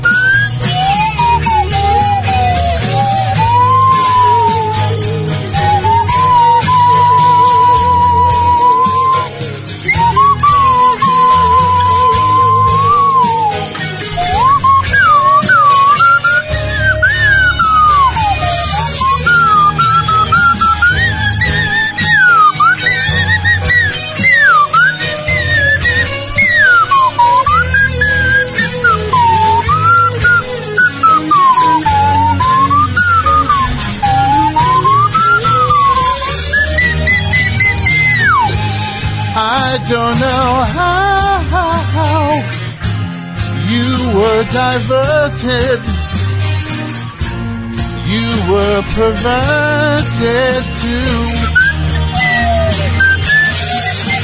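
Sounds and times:
slide whistle melody: 0.0s - 42.5s, 48.4s - 54.2s
full band backing: 0.0s - 54.2s.

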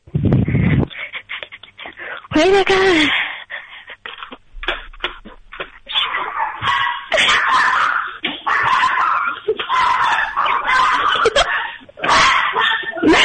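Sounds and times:
speech: 2.4s - 3.2s
laughter: 3.5s - 13.2s
several dogs barking and yipping excitedly: 5.9s - 13.2s.

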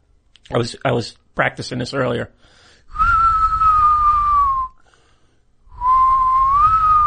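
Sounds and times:
speech: 0.5s - 3.0s
person whistling imitating an eerie haunted whistle: 2.9s - 4.8s, 5.7s - 7.0s.

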